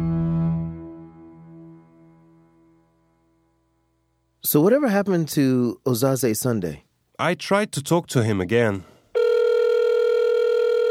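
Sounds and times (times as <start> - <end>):
speech: 4.4 - 8.9
telephone ringing tone of a call to a mobile phone: 9.2 - 10.9.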